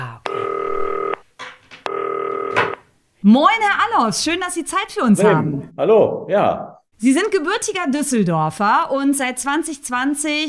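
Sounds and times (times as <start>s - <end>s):
electronic telephone tones while dialing: 0.3s - 1.2s, 1.9s - 2.8s
speech: 3.2s - 10.4s.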